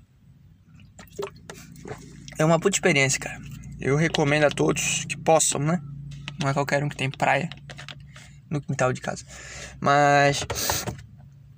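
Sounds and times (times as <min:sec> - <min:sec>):
person drinking water: 0:00.8 - 0:02.4
speech: 0:01.2 - 0:07.8, 0:08.5 - 0:10.9.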